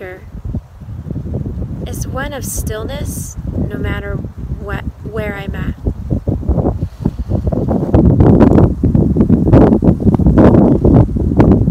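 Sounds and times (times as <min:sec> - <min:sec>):
speech: 0:00.0 - 0:00.4, 0:01.9 - 0:05.8
wind blowing outdoors in a forest: 0:00.0 - 0:11.6.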